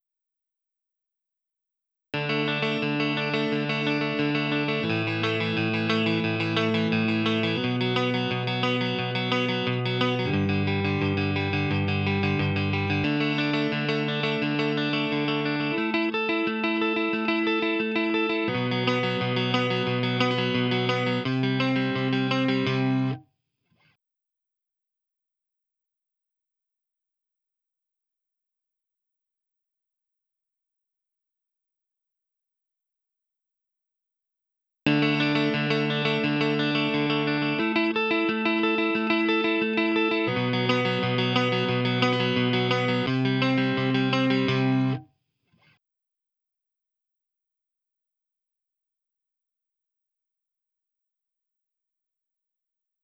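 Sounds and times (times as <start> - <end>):
clean electric lead guitar: 2.2 - 23.2, 34.9 - 45.0.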